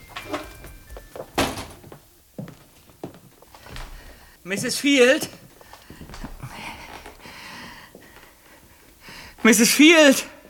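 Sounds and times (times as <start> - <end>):
wooden door slowly pushed open with soft creaks and a muffled thump: 0.0 - 2.0
speech: 4.4 - 5.4, 9.5 - 10.3.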